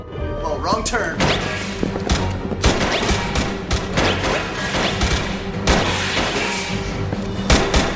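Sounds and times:
speech: 0:00.6 - 0:02.2
rapid overlapping gunshots in a firefight: 0:02.6 - 0:06.7, 0:07.5 - 0:07.9.

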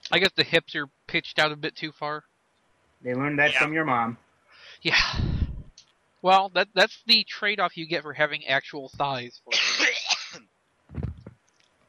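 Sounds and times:
speech: 0:00.1 - 0:02.3, 0:03.0 - 0:04.2, 0:04.8 - 0:05.3, 0:06.2 - 0:11.1
person coughing sharply: 0:09.5 - 0:10.4.

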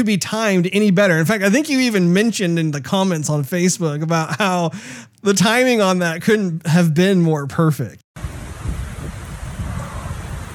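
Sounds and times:
speech: 0:00.0 - 0:08.3
deep rolling thunder from an approaching thunderstorm: 0:08.2 - 0:10.5
steady rain from a thunderstorm: 0:08.2 - 0:10.5.

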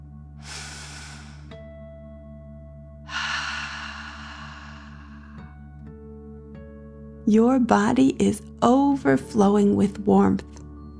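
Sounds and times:
forceful exhale through the mouth: 0:00.4 - 0:01.7, 0:03.1 - 0:05.5
slow deep inhale through the nose: 0:00.4 - 0:01.7, 0:03.1 - 0:05.6
speech: 0:07.3 - 0:10.5.

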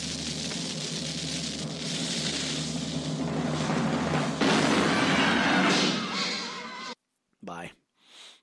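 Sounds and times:
harsh crackling crash: 0:00.0 - 0:07.0
cannon-fire sound effect: 0:04.0 - 0:06.2.

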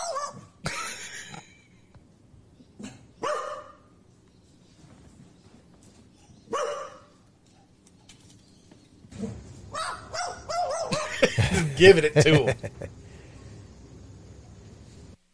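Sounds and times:
pet magpie making bark-like calls in a house: 0:03.2 - 0:03.8, 0:06.5 - 0:07.1, 0:09.7 - 0:11.2
laughter: 0:10.9 - 0:13.2
speech: 0:11.8 - 0:13.0.

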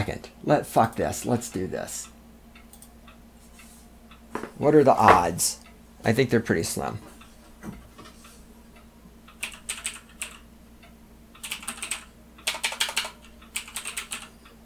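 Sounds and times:
speech: 0:00.0 - 0:02.1, 0:04.6 - 0:07.8
rapid computer keyboard typing: 0:02.6 - 0:03.0, 0:09.3 - 0:10.4, 0:11.4 - 0:14.3.

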